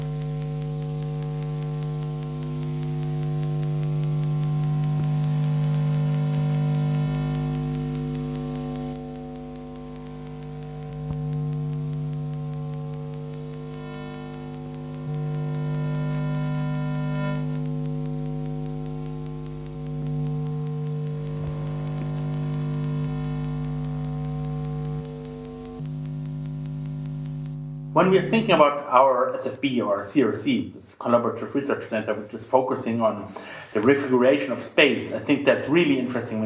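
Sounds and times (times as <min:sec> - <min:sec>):
radio waves made audible through FM radio as stacked humming tones: 0:00.0 - 0:28.7
FM radio static hiss: 0:00.0 - 0:36.4
speech: 0:28.0 - 0:36.4.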